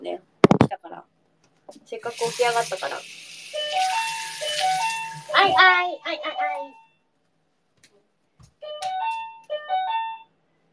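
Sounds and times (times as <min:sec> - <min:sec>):
speech: 0:01.9 - 0:03.9, 0:05.4 - 0:06.8
loud electronic intercom doorbell two-tone chime: 0:04.6 - 0:07.0, 0:08.6 - 0:10.4.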